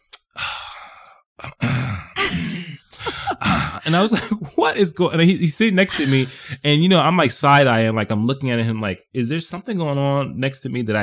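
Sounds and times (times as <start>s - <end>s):
voice imitating a satisfied exhale after drinking soda: 0.3s - 3.8s
speech: 3.4s - 11.0s.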